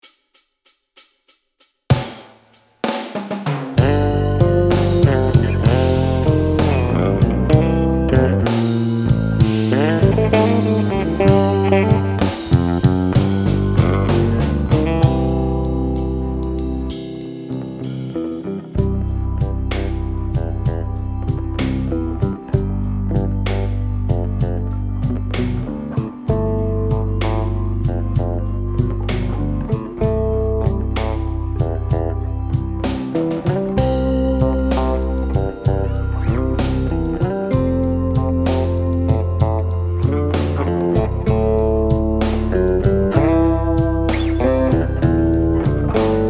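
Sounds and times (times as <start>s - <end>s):
blues bass: 3.2s - 46.2s.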